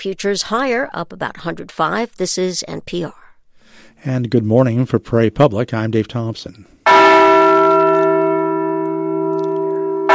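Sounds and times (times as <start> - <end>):
speech: 0.0 - 3.2, 3.8 - 7.0
Liberty Bell replica being struck and ringing: 6.9 - 10.1.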